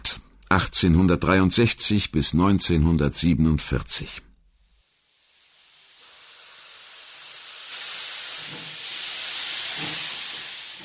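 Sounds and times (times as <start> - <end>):
speech: 0.5 - 4.3
steam locomotive hissing: 4.8 - 10.8.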